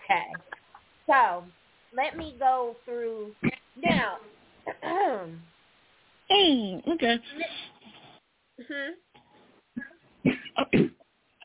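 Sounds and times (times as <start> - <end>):
speech: 0.1 - 5.5, 6.3 - 7.7, 8.6 - 9.0
person clearing throat: 9.8 - 11.0.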